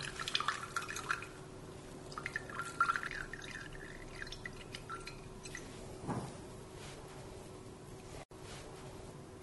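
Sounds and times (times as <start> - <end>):
whey dripping from a squeezed cheesecloth in a strainer in the sink: 0.0 - 5.8
faint steady hum: 0.0 - 9.4.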